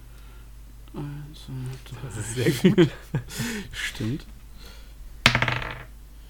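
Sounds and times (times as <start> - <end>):
speech: 1.0 - 4.8
laughter: 1.9 - 4.2
die clattering and bouncing on a table: 5.2 - 5.9.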